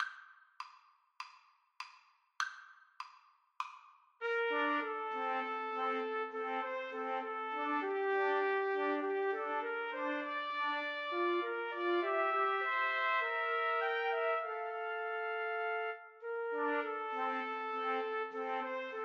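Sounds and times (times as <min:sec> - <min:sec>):
trumpet trio playing: 0:04.2 - 0:19.0.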